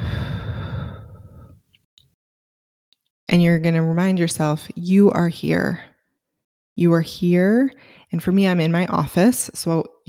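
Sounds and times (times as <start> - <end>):
deep breathy exhale during a guided grounding exercise: 0.0 - 1.6
speech: 3.3 - 5.9, 6.8 - 10.0.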